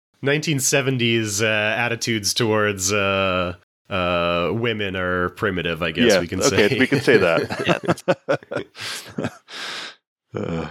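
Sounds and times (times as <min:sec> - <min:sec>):
speech: 0:00.2 - 0:10.6
laughter: 0:06.0 - 0:09.6
person yawning: 0:08.7 - 0:10.6.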